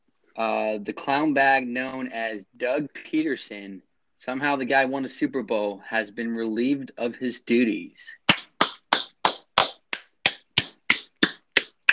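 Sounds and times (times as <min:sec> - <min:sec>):
speech: 0:00.4 - 0:08.2
single person clapping hands loudly: 0:08.3 - 0:11.9.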